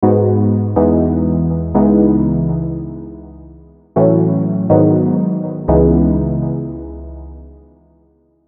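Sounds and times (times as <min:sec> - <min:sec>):
minor MIDI chord progression: 0:00.0 - 0:08.1.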